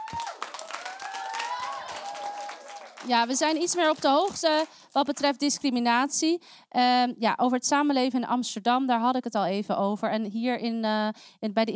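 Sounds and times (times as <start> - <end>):
audience applauding: 0.0 - 5.2
speech: 3.0 - 11.7.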